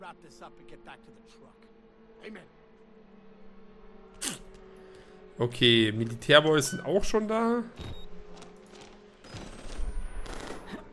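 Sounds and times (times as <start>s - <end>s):
speech: 0.1s - 2.6s, 5.4s - 8.0s
rapid gunfire bursts in a video game battlefield: 9.3s - 10.9s.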